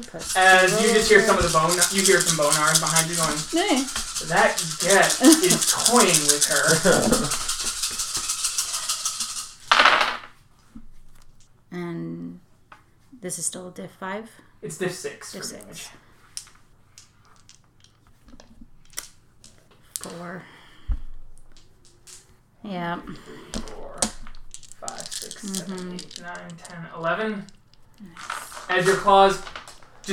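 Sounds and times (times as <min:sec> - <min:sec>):
speech: 0:00.0 - 0:07.6, 0:13.3 - 0:16.1, 0:20.0 - 0:20.6, 0:22.6 - 0:23.6, 0:25.0 - 0:30.1
big handful of dice clattering onto a hard surface: 0:00.0 - 0:10.3, 0:16.4 - 0:20.2, 0:23.6 - 0:30.1.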